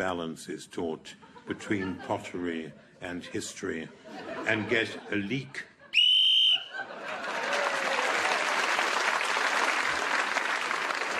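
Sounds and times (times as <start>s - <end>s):
speech: 0.0s - 5.7s
laughter: 1.1s - 8.0s
loud shrill whistle blast ending a round: 6.0s - 6.8s
sustained audience applause: 6.9s - 11.1s.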